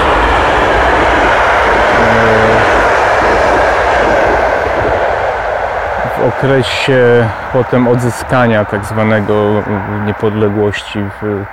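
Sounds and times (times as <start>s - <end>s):
train rumbling past: 0.0s - 11.5s
low horn-like tone: 1.8s - 2.9s
speech: 6.4s - 11.5s.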